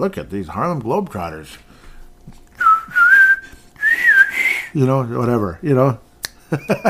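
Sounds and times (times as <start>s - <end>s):
speech: 0.0s - 1.7s, 4.7s - 6.8s
person whistling a short tune: 2.6s - 4.8s.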